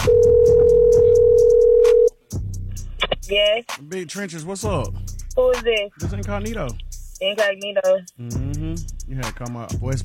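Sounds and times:
telephone dial tone while placing a call: 0.1s - 2.1s
speech: 3.3s - 10.0s.

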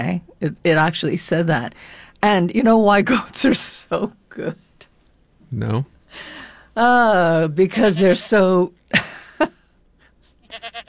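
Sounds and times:
speech: 0.0s - 4.6s, 5.5s - 9.6s, 10.5s - 10.8s
sheep bleating: 7.8s - 8.4s, 10.4s - 10.8s.

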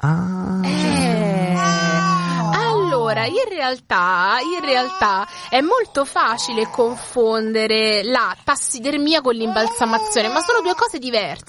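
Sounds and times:
speech: 0.0s - 0.4s, 3.2s - 11.4s
baby crying: 0.7s - 3.3s, 4.3s - 7.0s, 9.4s - 11.0s.

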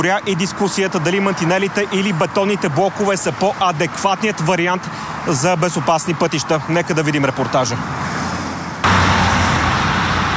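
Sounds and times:
speech: 0.0s - 8.2s
heavy afternoon traffic roaring on a motorway: 0.0s - 10.3s.

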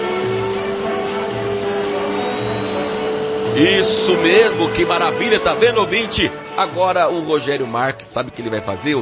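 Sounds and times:
vacuum cleaner running: 0.0s - 7.0s
speech: 3.6s - 9.0s.

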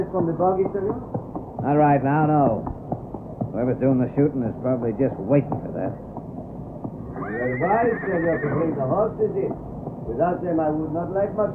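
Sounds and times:
speech: 0.0s - 2.8s, 3.6s - 6.1s, 7.4s - 11.5s
horse neighing with quavering whinny: 7.0s - 9.2s.

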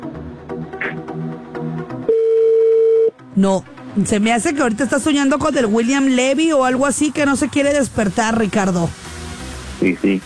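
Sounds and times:
telephone ringing tone of an outgoing call: 2.1s - 3.1s
speech: 3.4s - 9.0s, 9.8s - 10.2s.

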